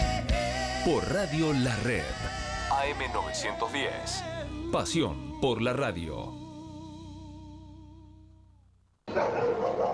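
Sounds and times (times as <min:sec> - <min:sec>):
speech: 0:00.8 - 0:06.4
small dogs barking: 0:09.1 - 0:09.9.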